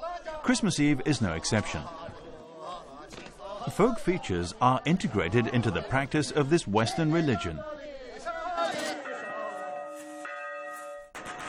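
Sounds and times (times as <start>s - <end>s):
speech: 0.5s - 2.1s, 3.6s - 8.0s
church bells ringing on Christmas Eve among Tibetan Catholics: 8.7s - 11.4s.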